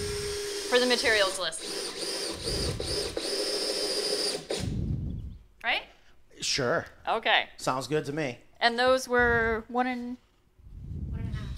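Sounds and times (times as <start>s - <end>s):
power driver driving a 3-inch screw into wood: 0.0s - 4.8s
speech: 0.7s - 3.1s, 5.6s - 5.8s, 6.4s - 10.2s.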